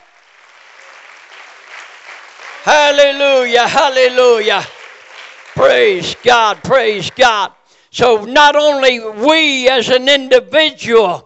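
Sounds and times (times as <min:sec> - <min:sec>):
church congregation clapping hands during worship: 0:00.0 - 0:07.6
speech: 0:02.6 - 0:04.8, 0:05.6 - 0:11.2.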